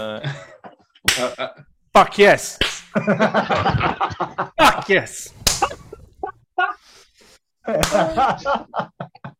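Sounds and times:
speech: 0.0 - 0.5, 1.2 - 4.0, 4.6 - 5.4, 7.9 - 8.8
laughter: 0.2 - 1.7, 2.9 - 4.9, 5.5 - 6.8, 7.6 - 9.3
man clapping hands: 1.0 - 1.4, 2.6 - 2.8, 7.8 - 8.1.

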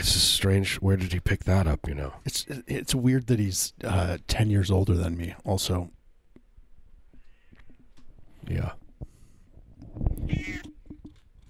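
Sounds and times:
speech: 0.0 - 6.0, 8.4 - 8.8
domestic cat meowing: 10.2 - 10.7.

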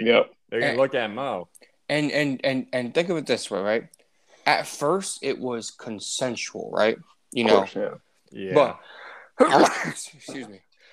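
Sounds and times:
speech: 0.0 - 10.7
person sneezing: 9.4 - 10.5.

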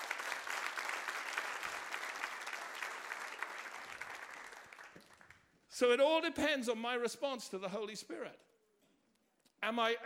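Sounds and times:
audience applause: 0.0 - 5.4
speech: 5.8 - 8.5, 9.6 - 10.0.

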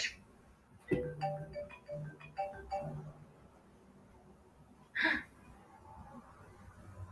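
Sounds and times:
soft thumps and clicks: 0.8 - 1.2
phone ringing with a short electronic melody: 0.9 - 3.1.

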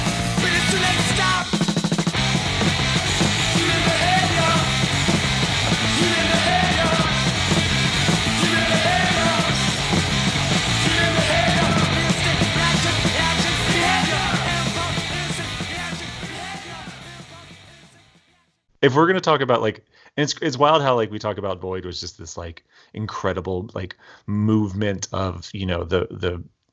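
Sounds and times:
hardcore punk song with distorted guitars and drums: 0.0 - 18.3
shouted vocals: 0.4 - 1.6, 3.4 - 4.8, 5.8 - 7.4, 8.2 - 9.8, 10.7 - 17.6
speech: 18.8 - 26.6.

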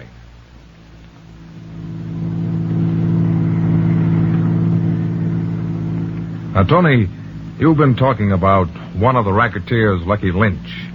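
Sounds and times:
car engine droning while pulling away: 0.0 - 10.9
speech: 6.6 - 10.9.

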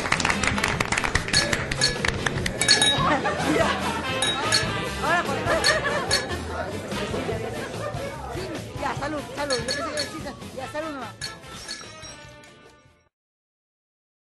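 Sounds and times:
people talking and cheering at a farewell party: 0.0 - 12.1
glasses clinking in a toast at a farewell party: 1.3 - 3.3, 4.1 - 4.9, 5.5 - 6.4, 9.4 - 13.0
laughter: 2.4 - 8.7.

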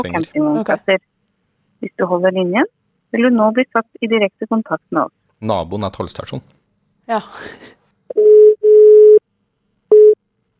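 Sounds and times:
speech: 0.0 - 1.1, 1.8 - 8.4
electronic telephone busy signal beeps: 8.1 - 9.2, 9.9 - 10.2.

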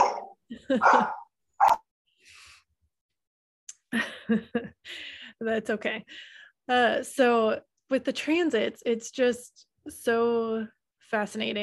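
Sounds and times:
dog barking: 0.0 - 1.8
speech: 0.5 - 1.2, 3.9 - 11.6.

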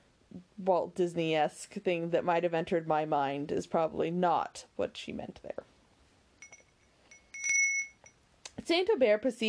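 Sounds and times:
speech: 0.6 - 5.7, 8.7 - 9.4
small bell ringing: 6.4 - 8.2.

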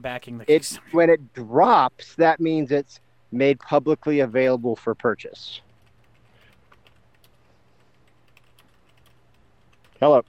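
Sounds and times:
speech: 0.0 - 5.7, 10.0 - 10.2
low hum: 0.0 - 10.2
typing on a computer keyboard: 5.6 - 10.2.

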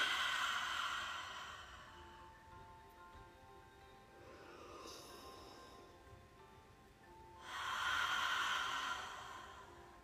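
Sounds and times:
person breathing in through the nose and out through the mouth: 0.0 - 2.8, 4.2 - 6.4, 7.4 - 10.0.

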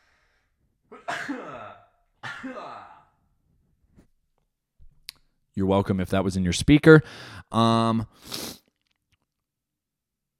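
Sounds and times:
loud explosive sneezes: 0.9 - 3.1
speech: 5.6 - 8.6
quiet breathing: 7.0 - 7.5.

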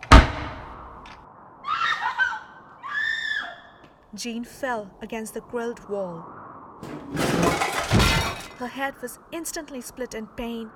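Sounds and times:
shrill scream-like wails: 1.6 - 3.8
speech: 4.1 - 7.2, 8.6 - 10.7
heavy house door slamming shut: 6.8 - 8.6.

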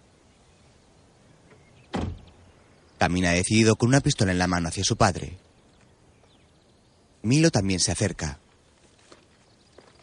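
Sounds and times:
car door opening as a man steps out of a stopped car: 1.9 - 2.3
speech: 3.0 - 5.4, 7.2 - 8.4.

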